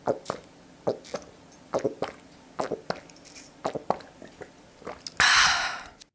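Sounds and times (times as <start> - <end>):
person gulping water: 0.0 - 6.1
breathy rush of air: 5.2 - 6.0.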